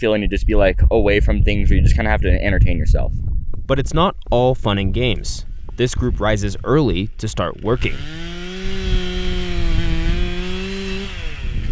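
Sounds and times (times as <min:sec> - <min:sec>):
speech: 0:00.0 - 0:09.1
powered jackhammer pounding stakes into stream bed: 0:07.7 - 0:11.6.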